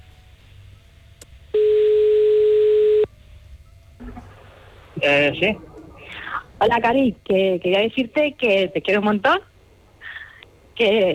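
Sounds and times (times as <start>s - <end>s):
faint noise: 0.0s - 11.1s
steady telephone tone while a call is being placed: 1.5s - 3.1s
speech: 5.0s - 5.7s, 6.6s - 9.5s, 10.8s - 11.1s.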